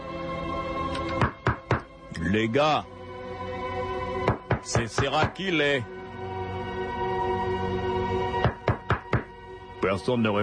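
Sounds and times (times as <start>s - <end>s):
music: 0.0s - 10.4s
knocking on a door: 1.2s - 1.9s, 4.2s - 5.4s, 8.4s - 9.3s
speech: 2.2s - 3.4s, 4.6s - 6.0s, 9.8s - 10.4s.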